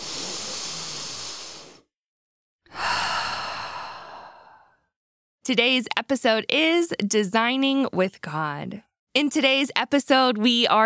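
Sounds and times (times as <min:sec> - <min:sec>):
deep breath drawn in and let out: 0:00.0 - 0:01.9, 0:02.7 - 0:04.9
speech: 0:05.5 - 0:10.8.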